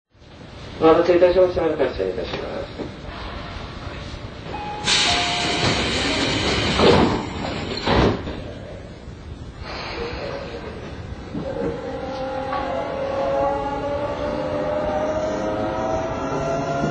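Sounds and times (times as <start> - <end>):
Tobu Railway commuter train rolling on the rails heard from inside: 0.2 - 16.8
speech: 0.8 - 3.1
commuter train hissing bursts: 4.8 - 7.0.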